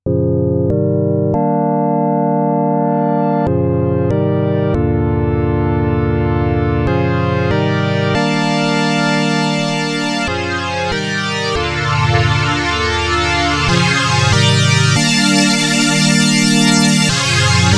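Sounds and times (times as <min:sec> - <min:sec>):
KORG Node Vox FM synthesizer: 0:00.0 - 0:17.7.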